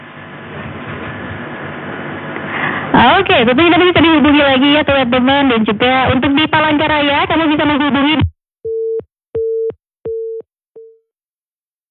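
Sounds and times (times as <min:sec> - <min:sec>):
speech: 0:03.0 - 0:08.3
busy tone after a phone line disconnects: 0:08.7 - 0:11.0.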